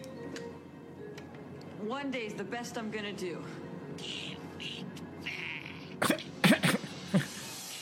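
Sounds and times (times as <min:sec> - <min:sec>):
speech: 0:01.9 - 0:04.2
person clearing throat: 0:05.4 - 0:07.2.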